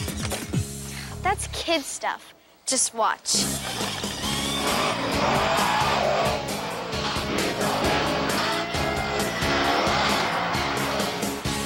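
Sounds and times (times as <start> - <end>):
speech: 1.3 - 4.1, 4.7 - 5.8
monster truck engine roaring: 3.6 - 11.6
monster truck tires skidding: 3.6 - 11.6
crowd noise: 4.6 - 11.6.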